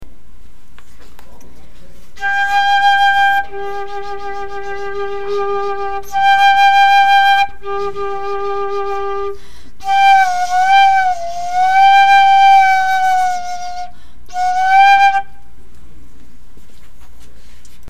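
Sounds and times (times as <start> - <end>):
PVC flute: 2.1 - 15.6.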